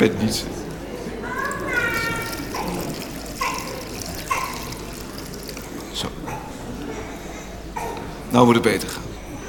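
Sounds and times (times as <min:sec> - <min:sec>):
speech: 0:00.0 - 0:00.7, 0:08.3 - 0:09.1
high-pitched child vocal sounds: 0:01.2 - 0:04.8
water pouring into a basin or bowl: 0:01.3 - 0:06.7.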